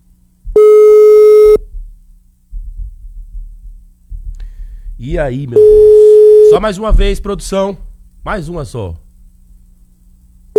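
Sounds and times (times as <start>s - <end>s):
low throbbing hum: 0.0s - 10.5s
ringback tone of an unanswered outgoing phone call: 0.6s - 1.6s, 5.6s - 6.5s
speech: 5.0s - 9.0s.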